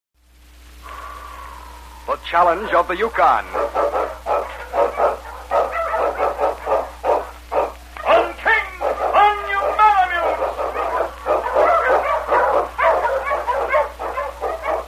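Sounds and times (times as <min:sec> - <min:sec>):
speech: 0:02.1 - 0:03.9
Eskimo lead sled dog barking excitedly in storm and snow: 0:03.3 - 0:14.8.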